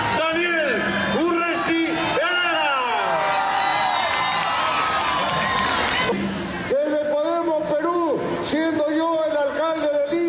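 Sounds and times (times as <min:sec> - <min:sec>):
large crowd cheering and shouting at a political rally: 0:00.0 - 0:10.1
large crowd clapping at a political rally: 0:03.0 - 0:06.5
whistles from a crowd at a political rally: 0:03.3 - 0:03.9.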